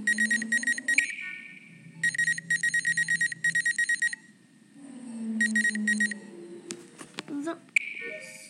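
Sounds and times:
rapid high electronic beeps from a video game medbay body scan: 0.0s - 4.2s, 5.4s - 6.2s
low steady hum: 0.0s - 8.4s.

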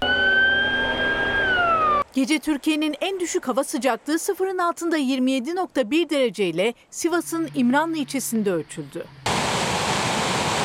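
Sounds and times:
tracked ambulance siren wailing: 0.0s - 2.0s
low rumble of traffic or engine noise: 0.0s - 10.6s
speech: 2.2s - 9.3s.

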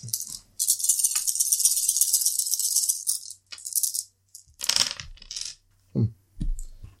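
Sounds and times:
several dice rattling and clattering across a hard surface during a game: 0.0s - 5.6s.

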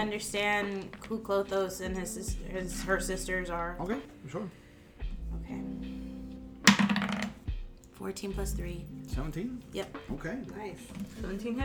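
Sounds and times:
speech: 0.0s - 4.6s, 5.3s - 5.9s, 8.0s - 11.6s
dice tumbling across a hard table: 6.7s - 7.4s.

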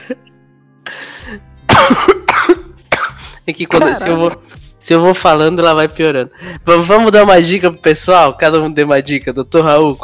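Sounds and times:
speech: 0.1s - 0.3s, 1.3s - 2.2s, 3.5s - 10.0s
person coughing harsh hacking coughs: 1.7s - 4.4s.

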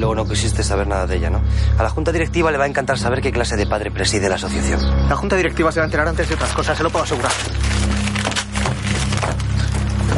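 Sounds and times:
speech: 0.0s - 8.0s
paper letter being torn up: 6.0s - 10.0s.

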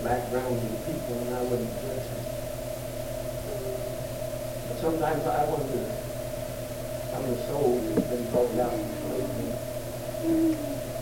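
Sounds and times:
speech: 0.0s - 2.4s, 4.7s - 6.1s, 7.1s - 9.4s, 10.2s - 10.9s
constant droning hum: 0.0s - 11.0s
low hollow hoot-like bird call: 3.4s - 4.2s, 9.5s - 11.0s.

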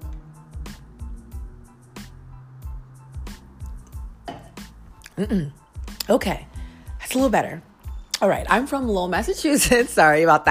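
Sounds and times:
person drinking water with gulps and swallows: 3.6s - 6.1s
speech: 5.2s - 6.5s, 7.1s - 10.4s.

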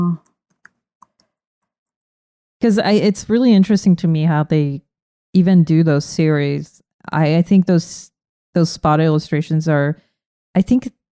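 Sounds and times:
quiet typing on a computer keyboard: 0.3s - 1.4s
speech: 2.6s - 11.0s.

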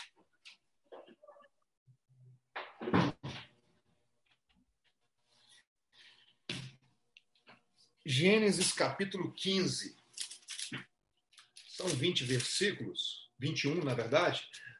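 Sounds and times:
office door closing thud: 2.6s - 3.5s
speech: 8.1s - 10.0s, 11.9s - 14.7s.

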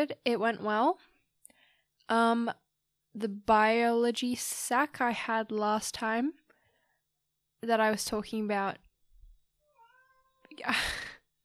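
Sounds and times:
speech: 0.0s - 1.1s, 2.1s - 6.4s, 7.6s - 8.8s, 10.6s - 11.1s
pet cat meowing: 9.6s - 10.6s.

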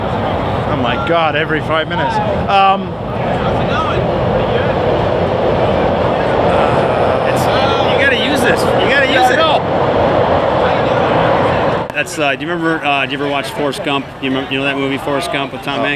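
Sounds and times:
train rumbling past: 0.0s - 15.9s
speech: 0.8s - 4.6s, 12.0s - 15.9s
laughter: 1.0s - 15.9s.

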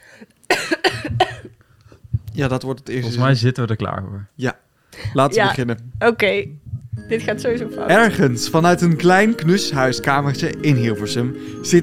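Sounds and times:
person coughing: 0.5s - 1.6s
speech: 2.4s - 11.8s.

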